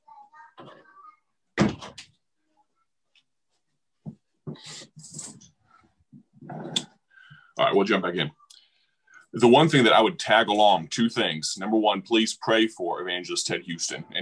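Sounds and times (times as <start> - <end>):
door closed by a person with a solid thump: 1.6 - 2.0
speech: 7.6 - 8.4, 9.4 - 14.2.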